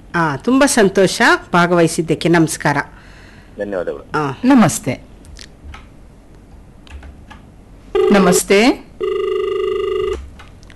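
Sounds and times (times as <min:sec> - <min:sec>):
faint noise: 0:00.0 - 0:10.7
speech: 0:00.2 - 0:05.1, 0:08.2 - 0:08.9
telephone ringing for an incoming call: 0:07.9 - 0:10.3.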